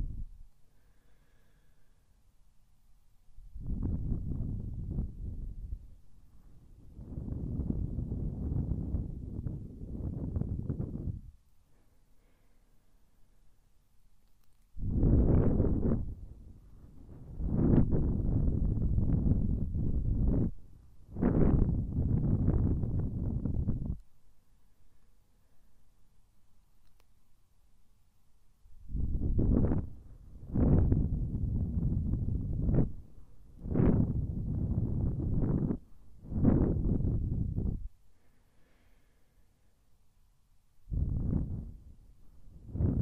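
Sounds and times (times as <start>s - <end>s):
wind buffeting the microphone of a recorder: 3.4s - 6.0s, 6.6s - 11.4s, 14.8s - 24.0s, 28.8s - 37.9s, 40.9s - 43.0s.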